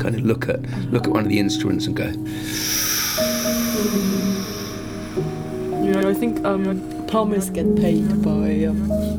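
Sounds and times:
speech: 0:00.0 - 0:04.5, 0:05.2 - 0:09.1
person drawing hissing breath in through clenched teeth: 0:02.4 - 0:05.8.

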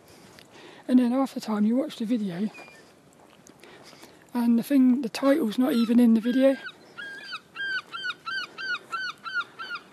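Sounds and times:
speech: 0:00.9 - 0:02.7, 0:04.4 - 0:06.8
seagulls squawking: 0:05.6 - 0:09.9.

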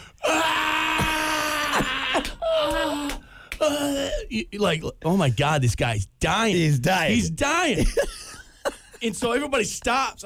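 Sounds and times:
voice imitating a blood-curdling scream: 0:00.2 - 0:04.3
speech: 0:03.7 - 0:08.2, 0:09.0 - 0:10.2.

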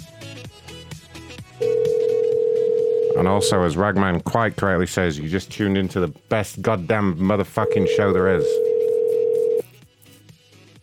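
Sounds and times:
telephone ringback tone while a call waits for an answer: 0:01.6 - 0:03.6, 0:07.6 - 0:09.6
speech: 0:03.2 - 0:08.7.

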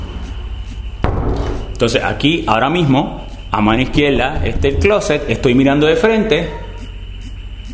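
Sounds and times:
low rumbling room noise: 0:00.0 - 0:07.7
bedroom door thudding shut: 0:01.0 - 0:01.7
speech: 0:01.8 - 0:06.6.

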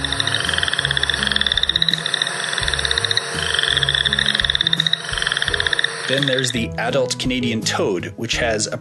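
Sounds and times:
chorus frog calling with clicking trills in the Calgary area: 0:00.0 - 0:06.7
soft steady music: 0:00.0 - 0:08.8
speech: 0:06.1 - 0:08.8.

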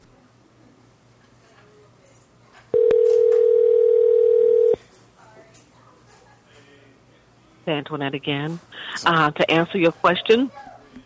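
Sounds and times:
telephone dial tone while redialing a caller: 0:02.8 - 0:04.8
speech: 0:07.7 - 0:10.6.

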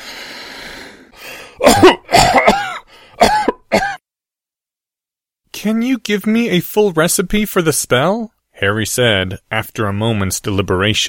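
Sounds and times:
harsh retching cough: 0:01.6 - 0:04.0
speech: 0:05.6 - 0:11.0.

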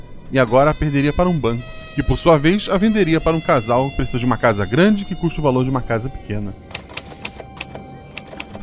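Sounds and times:
speech: 0:00.3 - 0:06.7
old typewriter keys clacking: 0:06.7 - 0:08.6.

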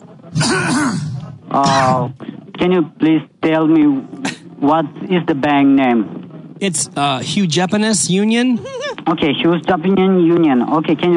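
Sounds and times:
person coughing into elbow: 0:00.4 - 0:02.0
speech: 0:01.5 - 0:11.1.

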